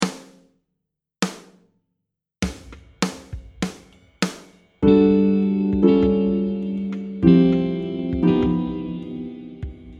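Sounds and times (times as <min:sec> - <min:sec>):
jazz guitar playing i vi ii V7 chords: 0:04.8 - 0:09.9.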